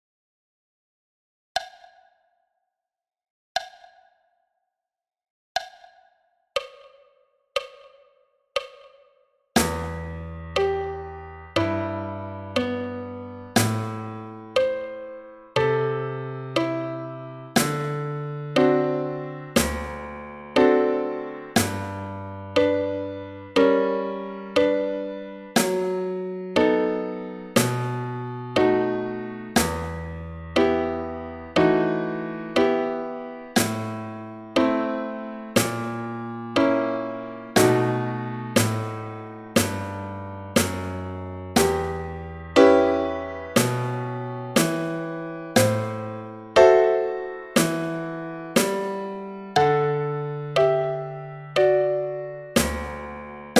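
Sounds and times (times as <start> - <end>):
snare drum: 9.6 - 10.2, 13.6 - 14.0, 17.6 - 18.0, 19.6 - 20.0, 21.6 - 22.0, 29.6 - 30.0, 33.6 - 34.0, 35.6 - 35.9, 37.6 - 37.9, 38.6 - 42.8, 43.6 - 44.0, 44.6 - 46.7, 47.6 - 49.1, 52.6 - 53.5
piano: 9.6 - 53.5.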